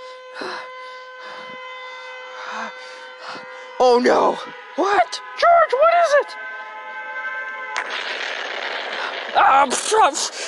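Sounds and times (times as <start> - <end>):
civil defense siren wailing: 0.0 - 10.4
speech: 3.8 - 6.5, 9.3 - 10.4
bursts of rushing noise: 7.8 - 10.4.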